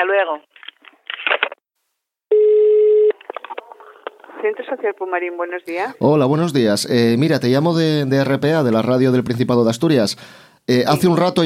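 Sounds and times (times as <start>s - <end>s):
speech: 0.0s - 0.6s, 4.4s - 11.4s
telephone ringback tone for a call to a community centre: 2.3s - 3.1s.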